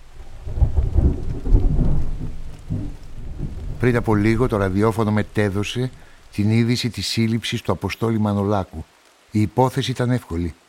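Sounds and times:
low rolling thunder: 0.0 - 6.3
steady rain on a rainy morning: 0.0 - 10.6
speech: 3.8 - 10.6.

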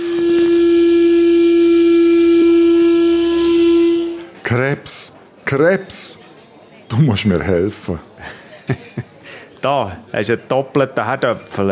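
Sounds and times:
steam whistling and hissing from escaping steam: 0.0 - 4.3
speech: 4.5 - 6.2, 6.9 - 8.9, 9.6 - 11.7
laughter: 8.2 - 9.3.

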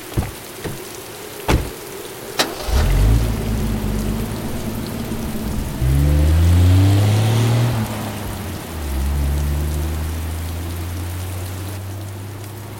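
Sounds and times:
sharp knocks: 0.0 - 0.9, 1.5 - 1.8
car engine rumbling as the vehicle drives through the downpour: 0.0 - 12.2
heavy hurricane rain hissing in New Orleans during Hurricane Katrina: 0.0 - 12.7.

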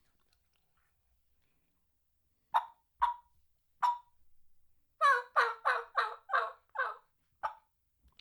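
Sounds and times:
turkey call gobbler yelping raspy yelps: 2.6 - 4.1, 5.0 - 7.6.

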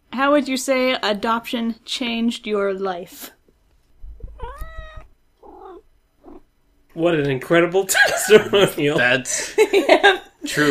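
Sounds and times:
speech: 0.2 - 3.4, 7.0 - 10.6
soft thumping: 4.0 - 5.1
former shelter cat meowing: 4.2 - 6.4
laughter: 7.9 - 10.6.

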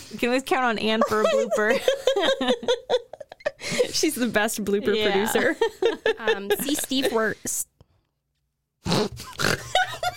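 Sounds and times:
speech: 0.1 - 3.0, 3.7 - 7.7
laughter: 0.8 - 4.3, 5.0 - 7.4, 9.6 - 10.1
loud human snort close to a microphone: 8.8 - 9.8.

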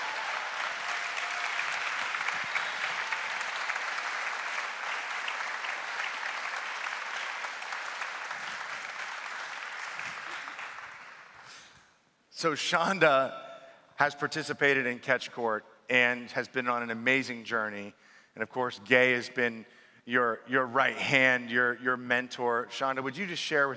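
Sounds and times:
church audience clapping: 0.0 - 11.8
speech: 12.4 - 13.4, 14.0 - 23.7.

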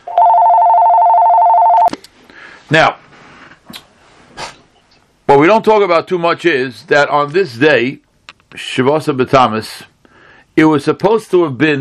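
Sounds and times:
telephone ringing with one continuous electronic tone: 0.0 - 1.9
speech: 2.7 - 3.0, 5.3 - 8.0, 8.6 - 9.9, 10.6 - 11.8.

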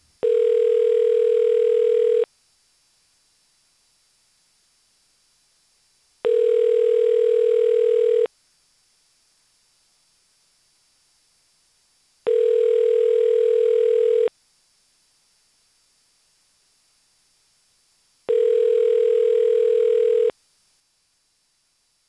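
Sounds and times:
telephone ringback tone while calling a listener back: 0.2 - 2.3, 6.3 - 8.3, 12.3 - 14.3, 18.3 - 20.3.

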